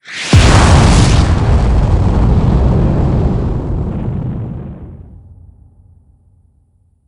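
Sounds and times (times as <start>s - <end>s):
rocket blastoff: 0.0s - 5.2s.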